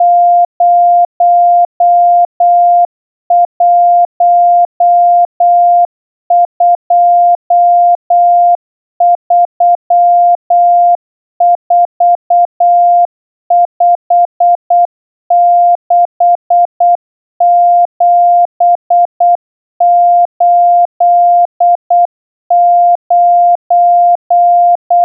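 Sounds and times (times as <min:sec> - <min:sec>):
slow Morse code numbers: 0:00.0 - 0:25.0.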